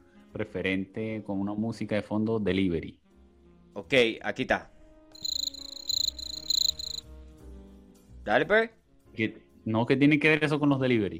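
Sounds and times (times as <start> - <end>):
speech: 0.4 - 3.0, 3.7 - 4.7, 8.2 - 11.1
cricket chirping: 5.2 - 7.0.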